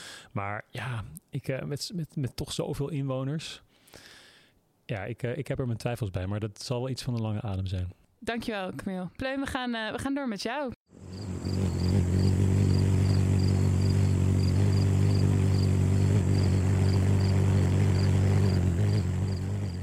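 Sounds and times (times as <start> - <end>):
speech: 0.4 - 4.1, 4.9 - 11.1
hummingbird wings humming in flight: 10.9 - 19.8.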